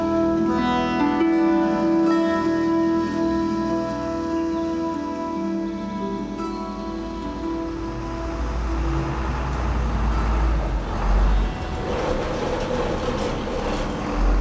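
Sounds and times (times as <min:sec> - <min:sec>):
truck driving over a bumpy road: 0:00.0 - 0:14.4.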